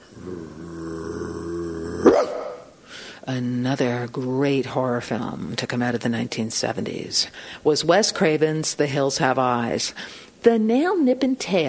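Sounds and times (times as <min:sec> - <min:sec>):
Rottweiler growling: 0:00.0 - 0:02.7
Rottweiler barking: 0:02.1 - 0:02.7
speech: 0:03.2 - 0:11.6.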